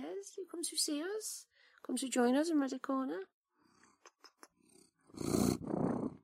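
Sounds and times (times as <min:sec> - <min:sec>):
speech: 0:00.2 - 0:03.4, 0:05.2 - 0:05.4
cat on a bed purring against the microphone: 0:03.6 - 0:06.2
cat sniffing the microphone: 0:05.2 - 0:06.2.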